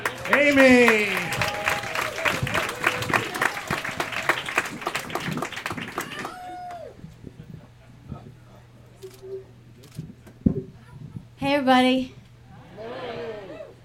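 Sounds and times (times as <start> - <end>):
crowd clapping at a live storytelling event: 0.0 - 6.9
people whooping: 0.0 - 7.2, 12.6 - 13.8
faint hum: 0.0 - 13.8
speech: 0.4 - 1.2, 11.7 - 12.2
scattered small noises: 7.1 - 11.4.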